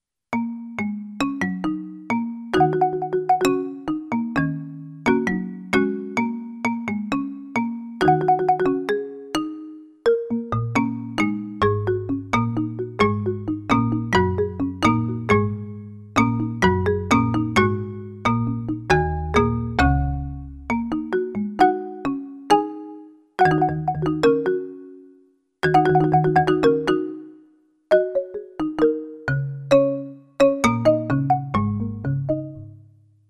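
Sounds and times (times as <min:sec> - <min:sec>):
marimba music: 0:00.4 - 0:25.0, 0:25.6 - 0:32.8.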